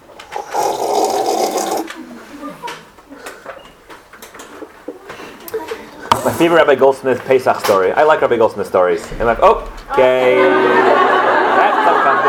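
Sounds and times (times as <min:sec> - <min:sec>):
person gulping a glass of water: 0:00.3 - 0:02.0
speech: 0:06.4 - 0:10.9
laughter: 0:09.9 - 0:12.2.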